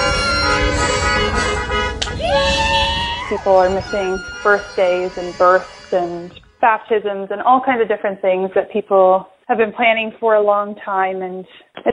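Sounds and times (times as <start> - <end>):
car horns honking in a drive-by wedding parade: 0.0 - 6.4
steady rumble of passing cars: 0.0 - 6.6
faint cheering from people inside the cars: 2.0 - 4.4
speech: 3.3 - 11.9.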